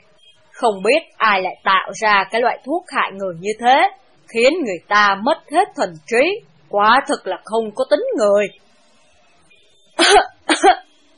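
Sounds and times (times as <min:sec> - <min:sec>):
speech: 0:00.6 - 0:08.6, 0:10.0 - 0:10.7
person coughing dryly: 0:10.0 - 0:10.8.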